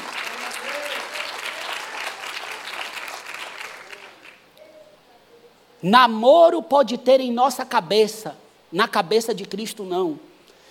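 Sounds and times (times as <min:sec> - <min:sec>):
audience applauding: 0:00.0 - 0:04.4
speech: 0:05.8 - 0:10.3.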